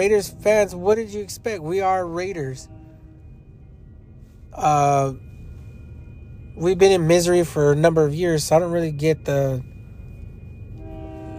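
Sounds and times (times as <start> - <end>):
speech: 0.0 - 2.8, 4.6 - 5.3, 6.6 - 9.7
steady train horn tone: 1.7 - 3.8, 10.8 - 11.3.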